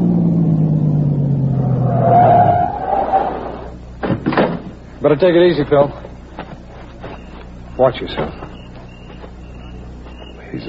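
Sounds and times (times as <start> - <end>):
car engine winding down and settling into idle as car stops: 0.0 - 4.0
sharp clunks: 4.0 - 4.8
speech: 5.0 - 6.0, 7.8 - 8.4.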